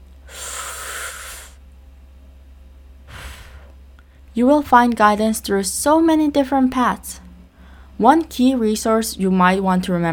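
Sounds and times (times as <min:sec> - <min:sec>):
steady low hum: 0:00.0 - 0:10.1
deep breath: 0:00.3 - 0:01.6, 0:03.1 - 0:04.3, 0:07.5 - 0:08.0
speech: 0:04.4 - 0:07.2, 0:08.0 - 0:10.1.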